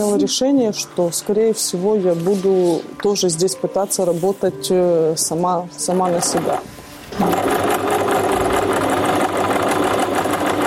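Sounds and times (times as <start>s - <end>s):
speech: 0.0s - 7.5s
sewing machine running with a stitching rattle: 5.9s - 10.6s.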